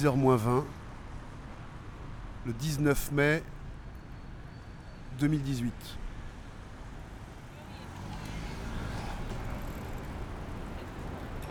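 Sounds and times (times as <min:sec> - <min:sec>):
speech: 0:00.0 - 0:00.8, 0:02.4 - 0:03.6, 0:05.2 - 0:06.0
cars pulling away at a green light on Rue Dufour at the Carrefour Mabillon: 0:07.7 - 0:11.4.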